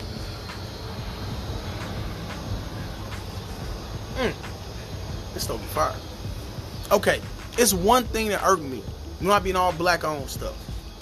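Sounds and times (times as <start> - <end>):
airplane engine roar passing overhead: 0.0 - 7.8
speech: 4.2 - 4.5, 5.4 - 6.1, 6.9 - 10.8.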